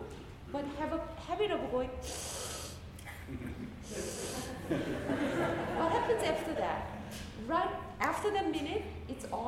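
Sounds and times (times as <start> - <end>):
speech: 0.5 - 2.4, 3.3 - 9.4
forceful hissing breath drawn in through the nose: 2.0 - 2.9
laughter: 3.1 - 6.5.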